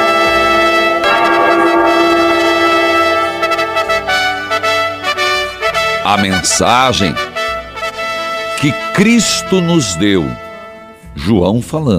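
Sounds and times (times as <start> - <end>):
bell ringing: 0.0 - 6.6
speech: 6.1 - 7.3, 8.6 - 10.4, 11.2 - 11.9.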